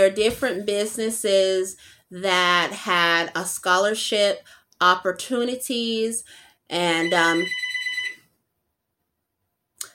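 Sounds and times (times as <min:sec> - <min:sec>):
speech: 0:00.0 - 0:07.6
house phone ringing with a trilling electronic bell: 0:06.8 - 0:08.3.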